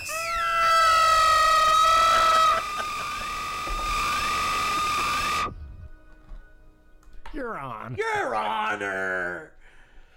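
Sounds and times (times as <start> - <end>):
high-pitched piercing siren: 0.7 - 5.6
speech: 7.5 - 9.5.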